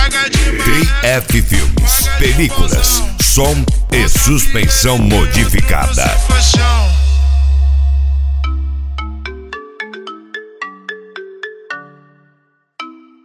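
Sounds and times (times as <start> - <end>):
deep bass rumble: 0.8 - 8.9
speech: 1.2 - 1.7, 2.3 - 7.0
phone ringtone melody of bright plucked electronic notes: 8.5 - 13.2.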